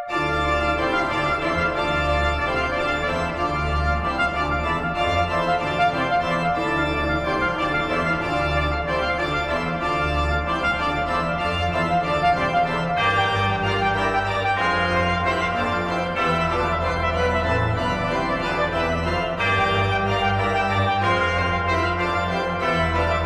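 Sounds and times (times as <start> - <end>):
organ: 0.1 - 23.2.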